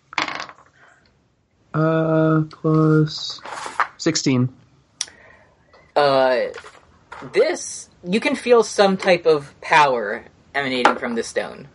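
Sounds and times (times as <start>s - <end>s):
dice rolled during a tabletop role-playing game: 0.1s - 0.7s
speech: 1.8s - 4.6s, 6.0s - 11.7s.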